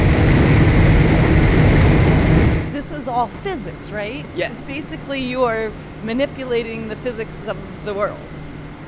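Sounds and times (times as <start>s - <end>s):
rushing wind in a hurricane tank: 0.0s - 3.0s
speech: 3.2s - 8.8s.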